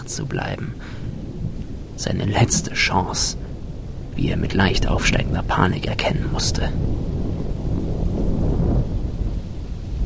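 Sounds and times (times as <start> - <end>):
faint hiss: 0.0 - 6.8
speech: 0.1 - 1.2, 2.0 - 3.4, 4.2 - 7.0
steady rolling rumble: 0.4 - 10.0.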